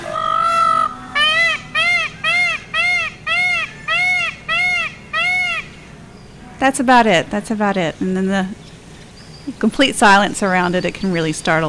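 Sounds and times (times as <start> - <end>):
peacock screaming: 0.0 - 5.9
speech: 6.6 - 8.6, 9.5 - 11.6.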